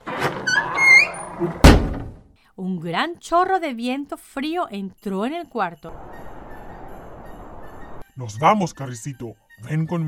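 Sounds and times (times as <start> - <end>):
room door creaking with a squeaky groan: 0.0 - 2.3
speech: 1.4 - 1.6, 2.6 - 6.3, 8.2 - 10.0.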